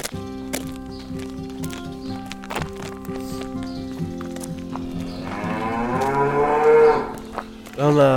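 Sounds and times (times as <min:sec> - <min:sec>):
clanks and thuds of livestock moving: 0:00.0 - 0:07.4
cows and calves mooing in a barn on a farm: 0:04.8 - 0:07.4
speech: 0:07.9 - 0:08.1.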